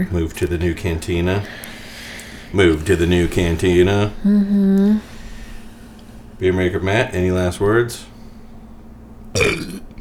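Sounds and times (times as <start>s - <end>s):
speech: 0.0s - 1.8s, 2.5s - 5.1s, 6.4s - 8.1s, 9.3s - 9.8s
loud burp: 9.4s - 9.9s.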